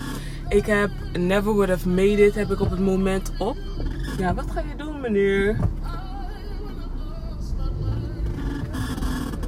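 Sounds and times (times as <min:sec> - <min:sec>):
faint squeaky creaks inside a moving car: 0:00.0 - 0:01.1, 0:02.0 - 0:05.9, 0:07.9 - 0:09.4
car engine and road noise: 0:00.0 - 0:09.4
low rumble of a moving car's interior: 0:00.0 - 0:09.4
speech: 0:00.5 - 0:06.0.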